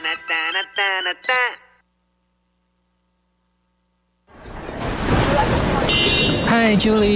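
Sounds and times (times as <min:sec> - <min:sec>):
speech: 0:00.1 - 0:01.6, 0:06.5 - 0:07.1
rain falling as a steady dense hiss: 0:04.3 - 0:06.0.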